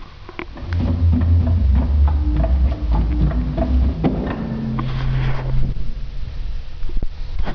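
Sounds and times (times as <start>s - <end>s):
Subbass 16 tone: 0.5s - 7.4s.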